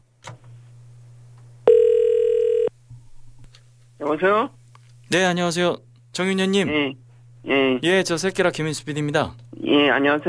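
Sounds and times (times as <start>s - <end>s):
telephone ring tone as a call connects: 1.7s - 2.7s
speech: 4.0s - 10.2s.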